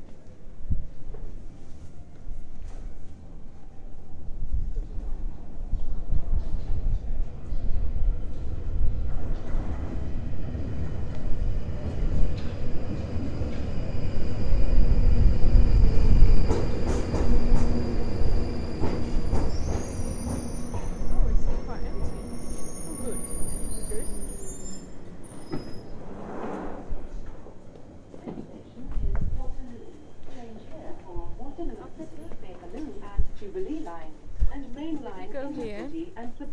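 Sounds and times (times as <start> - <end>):
passenger train rumbling along rails: 0.0 - 36.5
thin high-pitched squeals of train on rails: 11.8 - 26.9.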